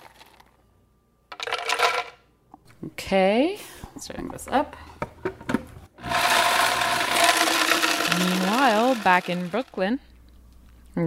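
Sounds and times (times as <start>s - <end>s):
speech: 2.8s - 5.4s, 8.9s - 10.1s
blender pulverizing almonds and pine nuts: 6.0s - 9.8s.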